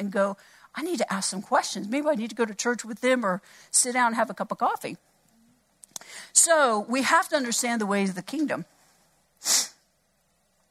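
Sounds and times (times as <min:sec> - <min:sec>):
speech: 0:00.0 - 0:05.1, 0:06.0 - 0:08.8, 0:09.4 - 0:09.7
short sharp nasal sniff: 0:09.4 - 0:09.8.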